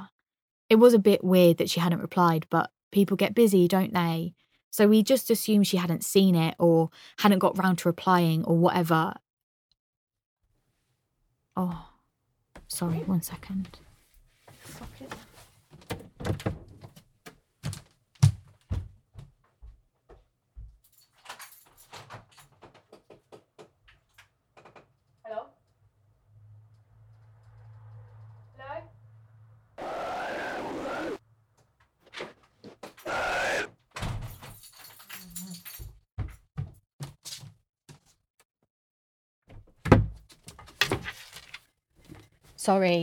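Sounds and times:
speech: 0:00.7 - 0:09.2, 0:11.6 - 0:11.9, 0:12.7 - 0:13.8, 0:42.7 - 0:43.0
door opening and closing: 0:15.7 - 0:17.0, 0:32.1 - 0:34.6
low hum: 0:26.4 - 0:31.2.

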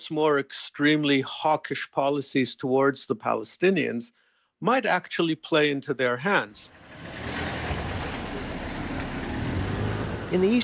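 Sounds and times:
speech: 0:00.1 - 0:07.4, 0:10.3 - 0:10.6
cars passing in a narrow street: 0:06.6 - 0:10.6.

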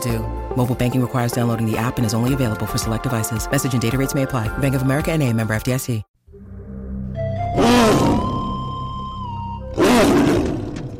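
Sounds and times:
speech: 0:00.0 - 0:06.1, 0:07.6 - 0:08.2
tiger roaring: 0:07.6 - 0:08.6, 0:09.8 - 0:10.9.

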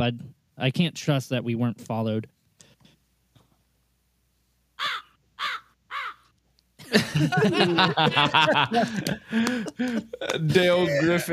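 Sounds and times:
speech: 0:00.0 - 0:02.4, 0:06.9 - 0:11.3
crow cawing: 0:04.8 - 0:06.3
loud busy cackling and chuckling: 0:04.8 - 0:11.3.

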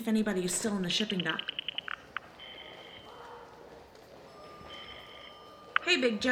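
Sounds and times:
speech: 0:00.0 - 0:01.6, 0:05.9 - 0:06.3
courtesy phone keypad beeps: 0:01.0 - 0:03.1, 0:04.3 - 0:06.3
faint steady electronic telephone ringing tones: 0:01.0 - 0:03.2, 0:04.1 - 0:06.3.

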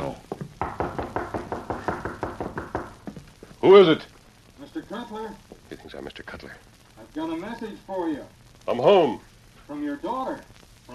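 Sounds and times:
knocking on the wooden rear door of a home: 0:00.3 - 0:03.3
speech: 0:03.6 - 0:04.1, 0:04.9 - 0:05.4, 0:06.0 - 0:10.9.

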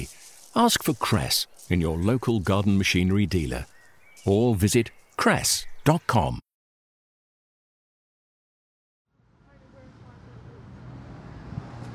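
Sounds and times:
speech: 0:00.0 - 0:06.5
busy street traffic engine rumble and tire noise: 0:09.2 - 0:11.9.

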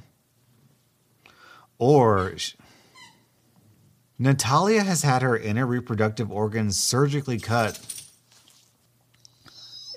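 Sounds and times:
speech: 0:01.8 - 0:02.8, 0:04.2 - 0:08.0
dog whimpering: 0:09.4 - 0:09.9.

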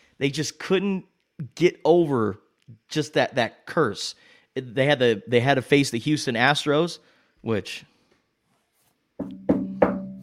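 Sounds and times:
speech: 0:00.2 - 0:07.9
hollow ringing bangs on a metal trash can: 0:09.2 - 0:10.2.

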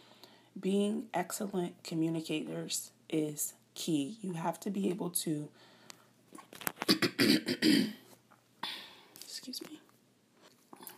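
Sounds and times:
speech: 0:00.6 - 0:05.7, 0:06.4 - 0:08.0, 0:09.5 - 0:09.8
person coughing from a cold: 0:06.8 - 0:08.0.

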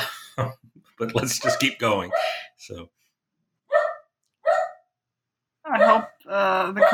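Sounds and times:
speech: 0:00.0 - 0:03.0, 0:05.7 - 0:06.9
dog barking agitated by a sudden thunderstorm: 0:01.4 - 0:02.5, 0:03.7 - 0:04.9, 0:05.8 - 0:06.1, 0:06.8 - 0:06.9.

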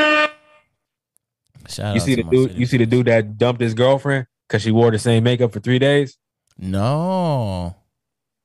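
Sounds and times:
air horn blast: 0:00.0 - 0:00.8
speech: 0:01.7 - 0:07.8.

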